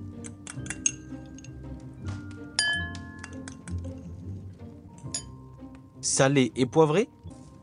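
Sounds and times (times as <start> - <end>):
spoon clinking against a bowl: 0.2 - 1.6, 2.6 - 4.1, 5.0 - 5.4
speech: 6.1 - 7.2.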